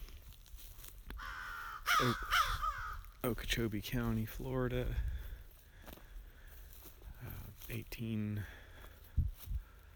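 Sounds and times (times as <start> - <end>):
American crows cawing on a Florida prairie preserve: 1.2 - 3.2
speech: 2.0 - 2.4, 3.2 - 5.1, 7.7 - 8.6.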